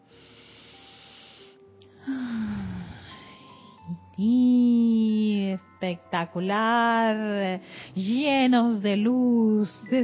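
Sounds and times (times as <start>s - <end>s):
deep breathy inhalation: 0.1s - 3.8s
speech: 4.2s - 4.6s, 5.9s - 10.0s.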